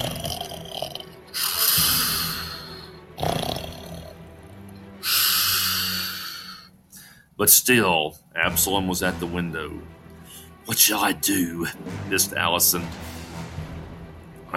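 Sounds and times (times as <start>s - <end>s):
loud rasping snoring: 0.0s - 4.4s, 5.0s - 6.7s
speech: 7.4s - 10.0s, 10.7s - 13.1s.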